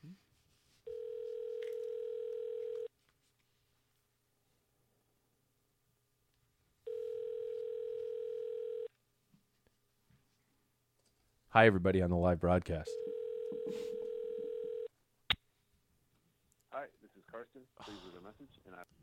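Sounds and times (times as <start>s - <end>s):
telephone ringing tone heard while placing a call: 0.9s - 2.9s, 6.9s - 8.9s, 12.9s - 14.9s
speech: 11.6s - 13.1s.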